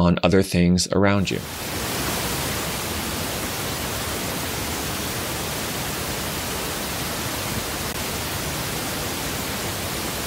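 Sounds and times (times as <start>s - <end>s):
speech: 0.0s - 2.2s
pink noise for tinnitus sound therapy: 1.2s - 10.2s.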